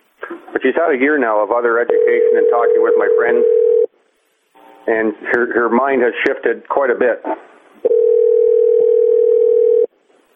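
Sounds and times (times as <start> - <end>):
speech: 0.6 - 3.6, 4.8 - 8.0
steady loud telephone line tone: 1.9 - 3.9, 7.8 - 9.9.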